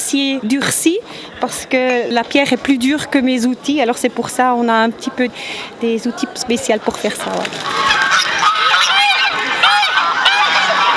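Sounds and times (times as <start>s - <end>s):
speech: 0.1s - 7.9s
large flock of geese honking: 7.2s - 10.9s.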